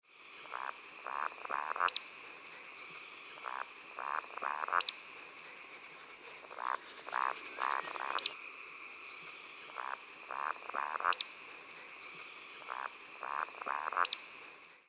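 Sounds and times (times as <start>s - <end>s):
Eurasian woodcock Scolopax rusticola call: 0.5s - 2.3s, 3.3s - 5.2s, 5.8s - 8.4s, 9.6s - 11.8s, 12.5s - 14.5s.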